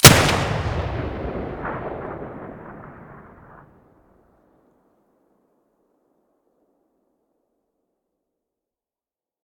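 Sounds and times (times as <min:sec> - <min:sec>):
Benelli shotgun muzzle blast: 0:00.0 - 0:03.8.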